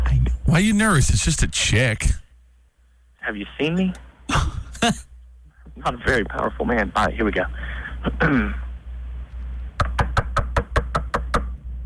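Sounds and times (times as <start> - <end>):
speech: 0.5 - 2.2, 3.2 - 5.1, 5.8 - 8.6
sharp knocks on a door: 9.8 - 11.5.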